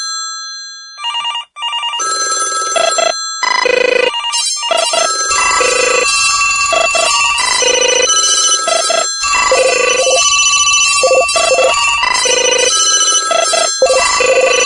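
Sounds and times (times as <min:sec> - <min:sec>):
mix of old telephone sounds: 0:01.0 - 0:14.6.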